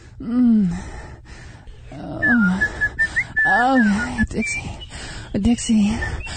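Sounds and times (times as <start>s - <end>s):
low drawn-out vocal groans: 0.0s - 1.0s, 1.8s - 4.8s
speech: 0.2s - 1.0s, 3.6s - 6.3s
person whistling a short wavering phrase: 2.2s - 4.9s.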